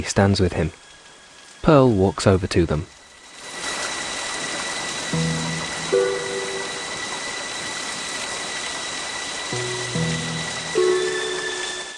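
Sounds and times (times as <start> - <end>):
speech: 0.0 - 0.8, 1.6 - 3.0
heavy rain pouring: 0.0 - 11.9
low sustained tones: 4.3 - 11.9.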